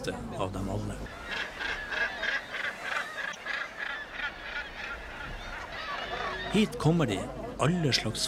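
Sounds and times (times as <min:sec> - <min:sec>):
speech: 0:00.0 - 0:01.6, 0:06.6 - 0:08.2
seabird colony calling at nesting cliffs in northern Norway: 0:00.0 - 0:08.2.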